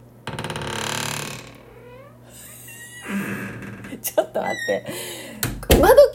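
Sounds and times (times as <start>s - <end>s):
door by the washbasin in a home creaking open: 0.2s - 4.9s
speech: 4.0s - 5.2s.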